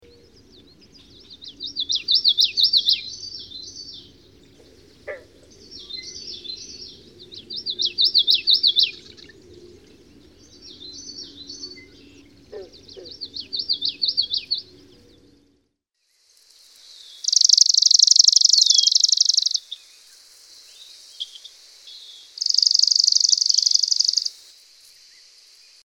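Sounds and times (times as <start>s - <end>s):
Common Yellowthroat singing: 0.0s - 15.6s, 17.2s - 19.6s, 22.4s - 24.3s.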